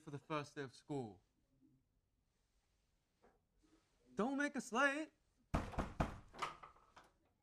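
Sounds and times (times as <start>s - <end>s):
speech: 0.0s - 1.3s, 4.2s - 5.6s
banging on a door: 5.5s - 6.6s.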